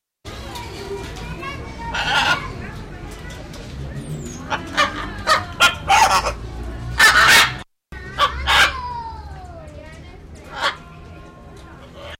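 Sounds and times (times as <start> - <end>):
parrot calling: 1.9 - 2.6, 4.2 - 6.4, 7.0 - 7.6, 8.2 - 9.0, 10.4 - 10.8.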